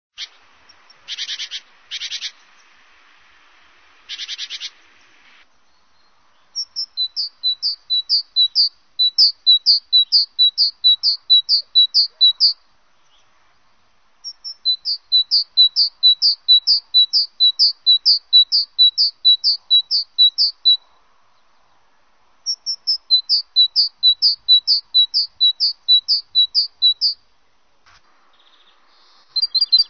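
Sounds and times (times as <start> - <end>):
great tit calling: 0.2 - 2.7, 6.4 - 13.3, 14.2 - 21.8, 22.5 - 27.2, 28.3 - 29.8.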